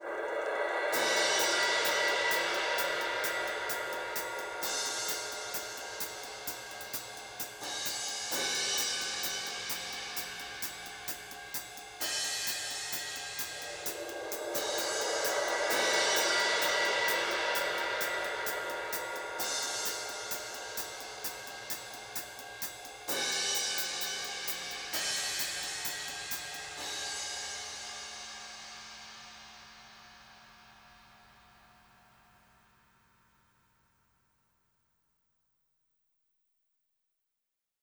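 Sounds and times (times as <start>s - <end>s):
solo cymbal: 0.0s - 32.8s.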